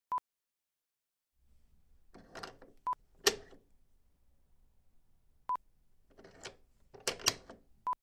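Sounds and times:
door twist lock turning: 2.1s - 3.6s, 6.1s - 7.7s.

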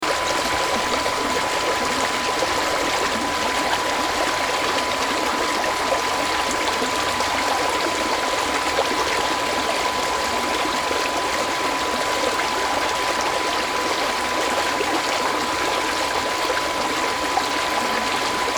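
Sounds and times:
Babb Brook flowing heard from a bridge: 0.0s - 18.5s.

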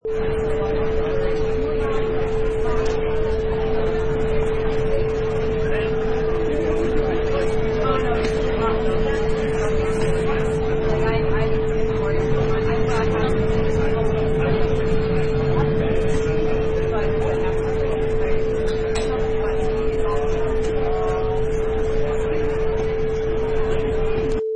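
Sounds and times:
train station background: 0.0s - 24.4s.

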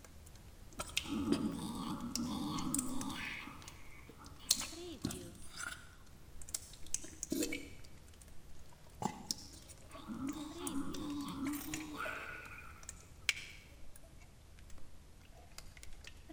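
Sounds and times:
water monster merman: 0.8s - 8.0s, 8.8s - 13.7s.

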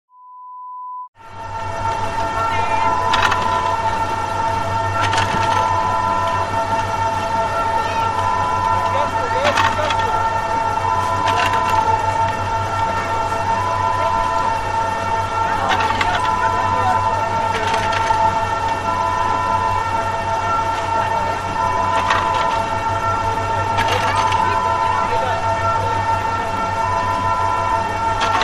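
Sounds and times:
ski lift running: 1.2s - 28.4s.

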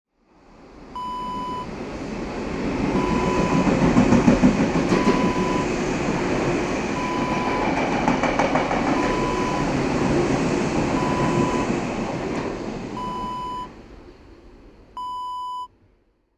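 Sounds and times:
metro train passing: 0.4s - 15.0s.

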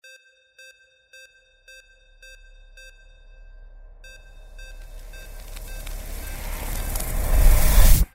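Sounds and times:
sci-fi magic ice sound effect ending: 4.7s - 8.1s.

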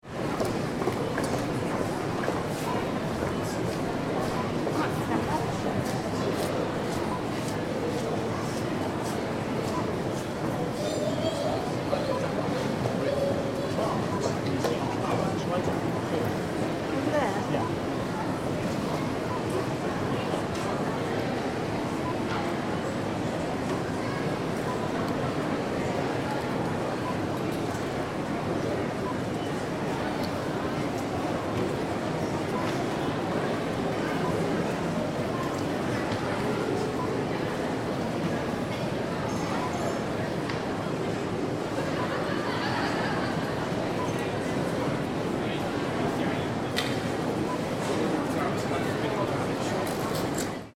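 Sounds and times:
busy shopping centre ambience: 0.0s - 50.7s
laughter: 41.8s - 43.7s.

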